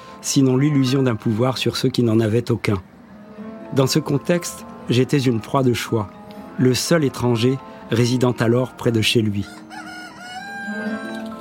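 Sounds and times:
speech: 0.2 - 3.0, 3.7 - 9.8
rooster crowing: 9.4 - 11.3.

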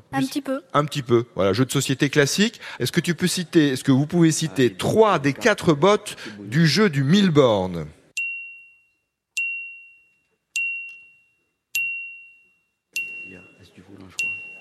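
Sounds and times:
speech: 0.1 - 8.0
quiz game bell dinging: 8.2 - 14.5.

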